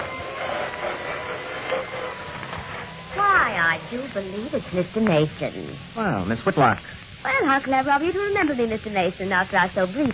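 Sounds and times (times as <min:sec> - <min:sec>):
elevator machinery starting up: 0:00.0 - 0:06.2
speech: 0:03.8 - 0:10.1.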